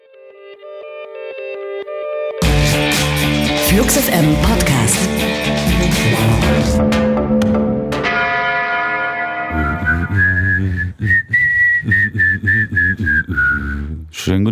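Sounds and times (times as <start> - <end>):
low instrumental backing music: 0.8 - 10.8
speech: 3.7 - 7.1
resonant bell-like tones: 8.1 - 10.3
person whistling a lilting melody: 9.5 - 14.1.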